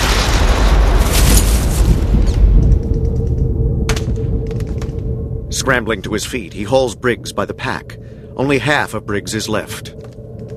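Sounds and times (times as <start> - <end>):
artillery shell exploding: 0.0 - 2.5
sharp crack: 0.0 - 5.2
low hum: 0.0 - 10.5
speech: 5.7 - 10.1.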